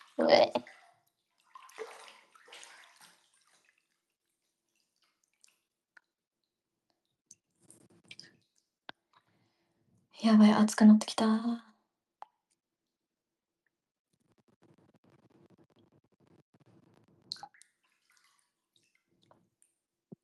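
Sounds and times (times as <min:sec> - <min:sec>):
hot bathwater sloshing in a bathtub as a hand stirs it: 0:00.0 - 0:09.6, 0:17.3 - 0:20.2
speech: 0:00.2 - 0:00.8, 0:10.2 - 0:11.7.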